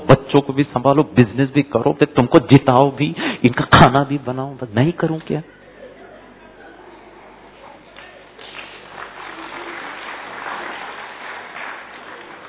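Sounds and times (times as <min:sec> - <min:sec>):
speech: 0:00.1 - 0:05.6
faint murmuring voices: 0:05.4 - 0:10.0
crowd clapping: 0:07.9 - 0:12.4.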